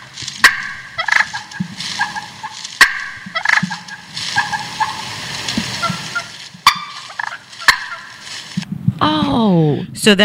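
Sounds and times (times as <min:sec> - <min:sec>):
wild turkey clucking: 0:00.0 - 0:08.6
faint outdoor hiss: 0:00.0 - 0:10.2
speech: 0:10.0 - 0:10.2.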